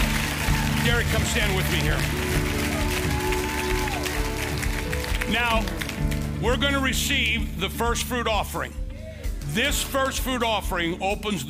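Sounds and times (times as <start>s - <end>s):
audience clapping in praise: 0.0s - 7.5s
speech: 0.8s - 2.8s, 5.3s - 8.8s, 9.5s - 11.4s.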